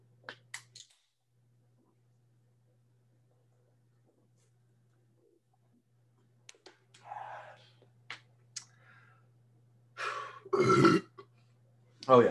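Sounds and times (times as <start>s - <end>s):
loud burp after a drink: 10.5s - 11.2s.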